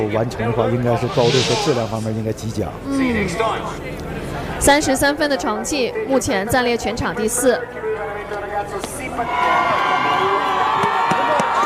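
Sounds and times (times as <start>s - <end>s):
speech: 0.0s - 10.0s
large crowd cheering and shouting as athlete enters: 9.3s - 11.6s.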